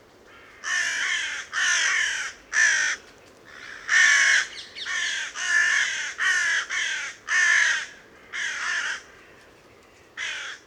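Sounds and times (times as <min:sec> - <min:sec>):
carrion crow Corvus corone cawing: 0:00.3 - 0:09.2, 0:10.2 - 0:10.6.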